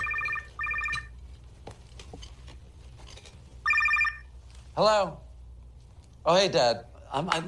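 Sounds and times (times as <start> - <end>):
telephone ringing in warbling electronic bursts: 0.0 - 1.2, 3.6 - 4.4
faint room clatter: 0.0 - 7.4
speech: 4.8 - 5.2, 6.2 - 7.4.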